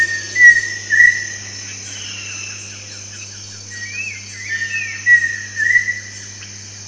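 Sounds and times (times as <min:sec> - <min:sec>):
pheasant cuckoo Dromococcyx phasianellus whistled call: 0:00.0 - 0:01.4, 0:03.7 - 0:06.1
constant high-pitched insect hum: 0:00.0 - 0:06.8.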